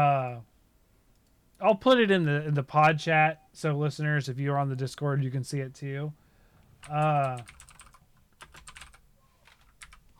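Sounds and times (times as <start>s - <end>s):
speech: 1.6s - 6.2s, 6.8s - 7.6s
typing on a computer keyboard: 6.8s - 10.0s.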